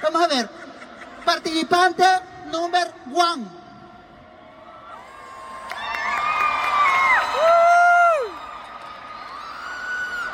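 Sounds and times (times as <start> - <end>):
speech: 0.3 - 0.6, 1.4 - 3.6
small crowd cheering and shouting to vote for a contest participant: 4.1 - 10.3.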